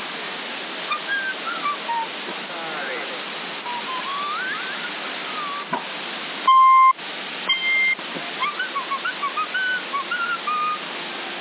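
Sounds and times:
constant CB radio hiss: 0:00.8 - 0:09.2
whistling sent over CB radio on the 27 MHz band: 0:00.9 - 0:02.1, 0:03.7 - 0:05.8, 0:06.5 - 0:10.8.

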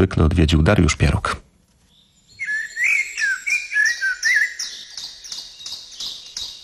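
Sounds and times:
speech: 0:00.0 - 0:01.4
birdsong: 0:00.0 - 0:06.6
bird chirps: 0:01.8 - 0:06.6.

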